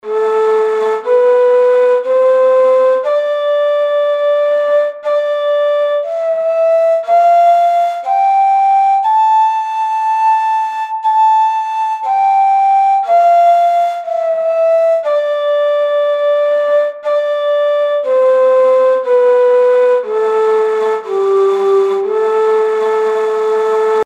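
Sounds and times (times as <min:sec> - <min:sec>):
ney playing uşşak beyati: 0:00.0 - 0:24.0.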